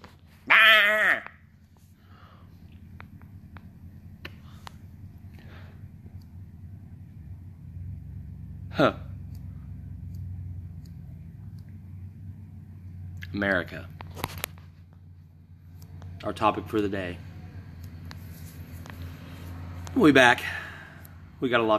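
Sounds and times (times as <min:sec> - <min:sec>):
sheep bleating: 0:00.4 - 0:01.4
speech: 0:08.8 - 0:09.0, 0:13.4 - 0:14.0, 0:16.3 - 0:17.3, 0:20.0 - 0:20.6, 0:21.4 - 0:21.7.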